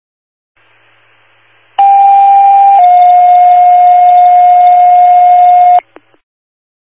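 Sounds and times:
automatic fire alarm sounding at a station: 1.8s - 5.8s.

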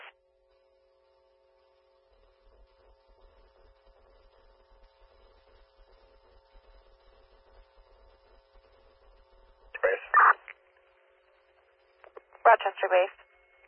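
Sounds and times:
faint steady hum: 0.0s - 13.6s
low radio crackle: 0.0s - 13.6s
quiet radio channel hiss: 2.3s - 10.6s, 11.9s - 13.6s
radio dispatch cancel tones: 9.8s - 10.5s, 12.4s - 13.6s
speech: 12.5s - 13.2s.

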